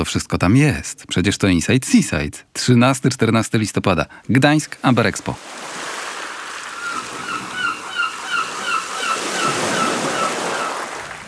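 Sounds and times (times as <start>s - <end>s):
speech: 0.0s - 5.7s
ocean surf rushing: 5.2s - 11.2s
honking bird calls: 6.5s - 11.2s.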